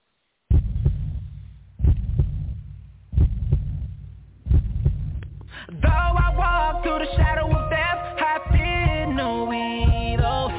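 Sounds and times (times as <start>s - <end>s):
heartbeat thumping at a song intro: 0.5s - 10.5s
low sustained hum: 5.8s - 10.5s.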